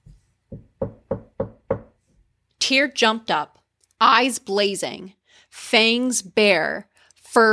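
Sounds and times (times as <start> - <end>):
knocking on a wooden door: 0.5 - 2.0
speech: 2.7 - 7.5.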